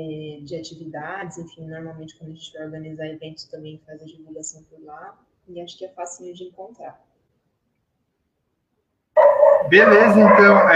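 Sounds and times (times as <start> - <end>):
speech: 0.0 - 7.1, 9.7 - 10.7
dog barking: 9.2 - 10.7.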